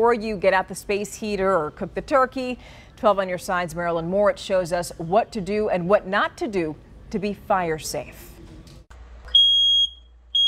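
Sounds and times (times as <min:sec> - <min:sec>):
speech: 0:00.0 - 0:08.3
low noise: 0:00.0 - 0:10.4
smoke detector alarm beeping: 0:09.3 - 0:10.4.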